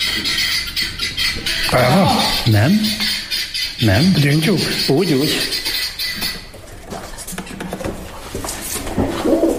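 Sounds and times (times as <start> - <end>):
pigeon cooing: 0.0 - 6.5, 8.9 - 9.5
speech: 0.2 - 0.4, 1.7 - 3.2, 3.8 - 5.6
pigeons scuffling: 5.7 - 9.5.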